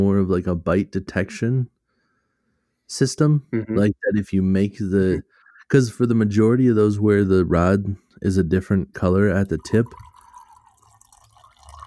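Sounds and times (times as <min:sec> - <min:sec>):
speech: 0:00.0 - 0:01.8, 0:02.9 - 0:10.1
liquid pouring steadily into a glass: 0:09.3 - 0:11.8.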